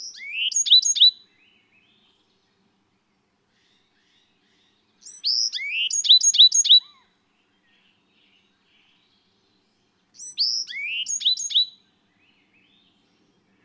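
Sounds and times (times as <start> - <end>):
Bewick's wren singing: 0.0 - 1.2, 5.0 - 7.0, 10.2 - 11.8.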